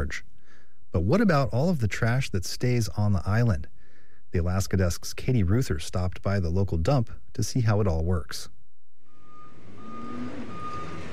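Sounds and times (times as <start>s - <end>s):
speech: 0.0s - 0.3s, 0.9s - 8.6s
dump truck low engine rumble: 9.0s - 11.1s
dump truck reversing beeper at a trash dump: 9.0s - 11.1s.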